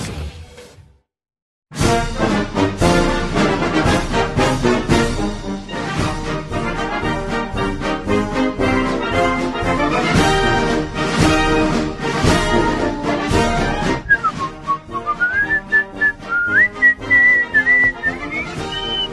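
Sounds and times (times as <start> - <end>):
loud dense band music: 1.8 - 19.1
person whistling a lively wandering melody: 14.1 - 19.1.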